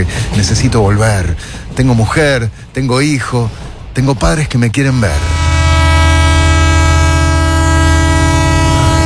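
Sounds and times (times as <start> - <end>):
speech: 0.0 - 5.4
train pulling into a station on the outskirts of Hiroshima: 0.0 - 9.0
droning horn-like train tones: 4.8 - 9.0.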